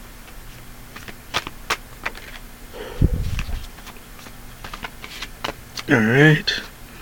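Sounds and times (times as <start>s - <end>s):
deck of cards being shuffled with papery slaps and clicks: 0.9s - 2.4s, 3.1s - 5.9s
speech: 5.9s - 6.7s.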